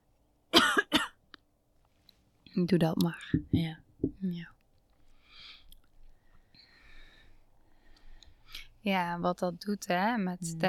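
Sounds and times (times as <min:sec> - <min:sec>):
person coughing to clear the throat: 0:00.6 - 0:01.2
speech: 0:02.5 - 0:04.6, 0:08.8 - 0:10.6.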